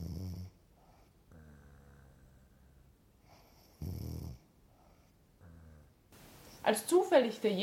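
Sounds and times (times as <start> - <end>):
wolf snoring loudly in bed: 0.0 - 0.6, 1.3 - 2.7, 3.6 - 4.4, 5.4 - 6.0
speech: 6.6 - 7.6.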